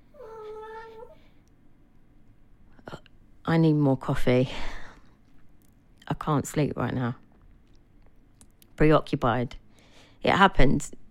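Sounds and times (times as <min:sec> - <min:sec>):
startled cat meowing: 0:00.2 - 0:01.2
speech: 0:03.5 - 0:04.8, 0:06.2 - 0:07.2, 0:08.8 - 0:09.6, 0:10.2 - 0:11.0.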